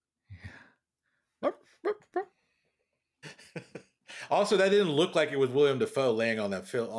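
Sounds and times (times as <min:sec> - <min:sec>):
person imitating dog barks: 0:01.4 - 0:02.3
speech: 0:04.3 - 0:06.9.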